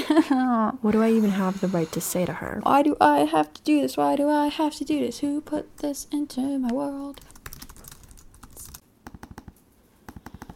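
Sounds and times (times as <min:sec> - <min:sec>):
speech: 0:00.2 - 0:07.3
typing a letter on a computer keyboard: 0:07.1 - 0:10.5.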